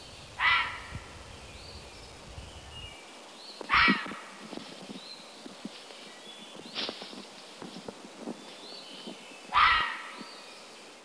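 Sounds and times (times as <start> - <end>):
fisher harsh raspy scream: 0.4 - 0.9, 3.7 - 4.2, 9.5 - 10.2
soft rustles and taps: 3.6 - 9.2.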